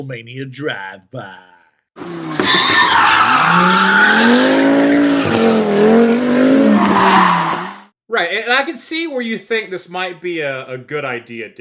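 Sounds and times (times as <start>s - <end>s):
speech: 0.0s - 7.4s, 8.1s - 11.5s
skidding car tires screeching: 2.0s - 7.9s.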